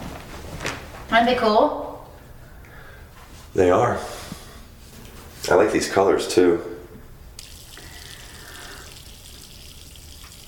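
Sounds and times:
speech: 1.1 - 1.8, 3.6 - 4.3, 5.5 - 6.7
faucet water splashing into a sink: 7.4 - 10.4.

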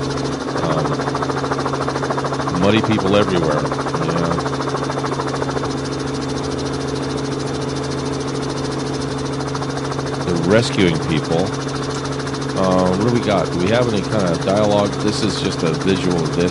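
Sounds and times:
helicopter engine and rotor: 0.0 - 16.4
speech: 2.6 - 4.2, 10.5 - 11.8, 12.6 - 16.4.

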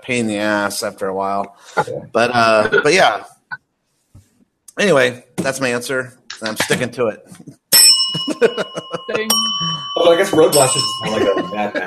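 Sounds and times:
speech: 0.0 - 3.4, 4.8 - 7.6, 8.2 - 11.8
laughter: 1.8 - 3.2, 6.4 - 7.0, 8.2 - 9.4, 11.0 - 11.8
bright loud bell ringing: 7.7 - 11.8.

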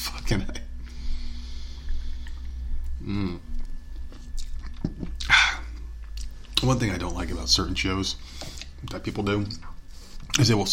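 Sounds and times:
low steady hum: 0.0 - 10.7
speech: 0.3 - 0.6, 6.6 - 9.7, 10.4 - 10.7
person sipping beer: 1.0 - 6.6.

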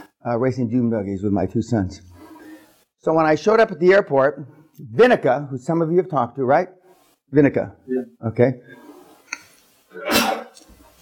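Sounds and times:
speech: 0.2 - 2.2, 3.0 - 8.8
person sneezing: 9.9 - 10.7.

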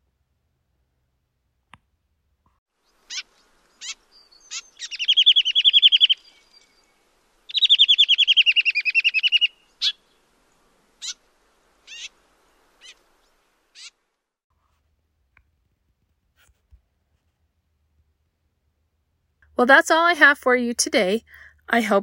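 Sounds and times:
gray vireo long harsh buzzy chattering trills: 2.8 - 10.2, 10.9 - 14.0
gray vireo sharp chip notes: 3.1 - 6.9, 7.5 - 10.0
speech: 19.6 - 22.0.

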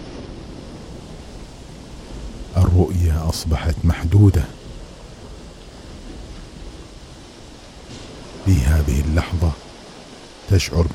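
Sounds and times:
heavy rain pouring: 0.0 - 10.9
speech: 2.8 - 4.6, 8.5 - 9.6, 10.5 - 10.9.

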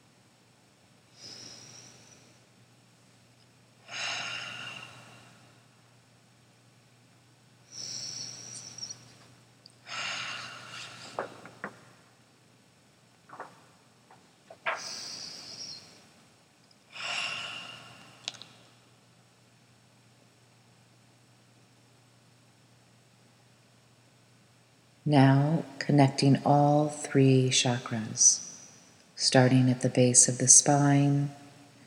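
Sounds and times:
slow Ujjayi breathing during a meditation: 1.1 - 2.5, 3.8 - 5.6, 7.6 - 9.0, 9.8 - 11.4, 14.7 - 16.0, 16.9 - 18.4
speech: 25.1 - 28.5, 29.2 - 31.4.

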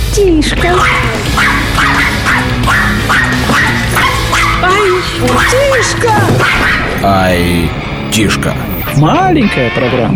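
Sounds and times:
speech: 0.2 - 1.6, 5.0 - 10.1
small dog yapping with high-pitched barks: 0.7 - 6.8.

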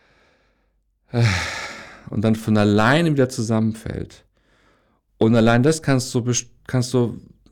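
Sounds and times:
deep breathy inhale into the belly: 0.0 - 2.1, 4.4 - 5.0
speech: 1.1 - 1.5, 2.1 - 4.3, 5.2 - 7.5.

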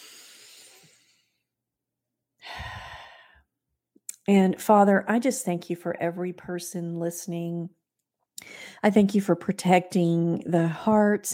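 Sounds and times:
deep breaths during a guided deep-breathing exercise: 0.0 - 1.4, 2.4 - 3.5, 8.4 - 8.8
speech: 4.3 - 7.8, 8.8 - 11.3.

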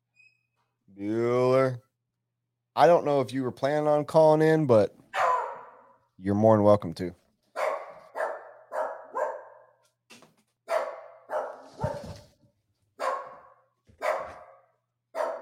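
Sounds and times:
speech: 1.0 - 1.8, 2.8 - 5.0, 6.2 - 7.2
dog barking: 5.1 - 6.0, 7.5 - 9.8, 10.7 - 12.2, 13.0 - 15.3.

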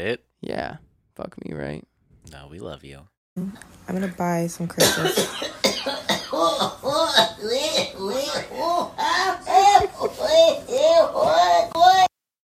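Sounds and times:
speech: 0.0 - 12.0
stifled coughing after drinking beer: 4.8 - 11.7.

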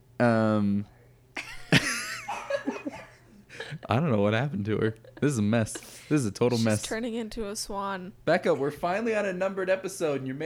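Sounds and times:
speech: 0.2 - 1.0, 3.8 - 10.4
woman's breathy laughter: 1.4 - 3.9
woman coughing with a honking voiced cough: 5.7 - 7.0.

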